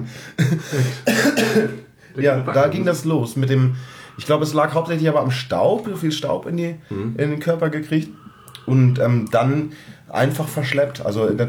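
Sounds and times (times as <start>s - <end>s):
speech: 0.0s - 11.4s
rough throaty coughs: 0.4s - 1.9s.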